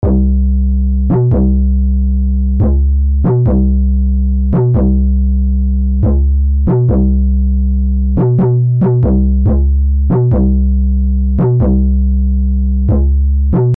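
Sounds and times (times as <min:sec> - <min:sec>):
808 bass from a software synthesizer: 0:00.0 - 0:13.7.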